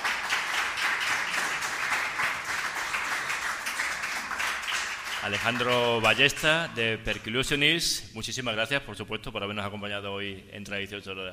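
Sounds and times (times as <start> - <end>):
crowd applauding: 0.0 - 6.6
speech: 5.2 - 11.3.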